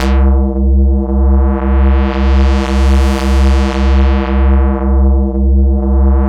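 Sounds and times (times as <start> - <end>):
jungle bass note: 0.0 - 2.6, 3.9 - 6.2.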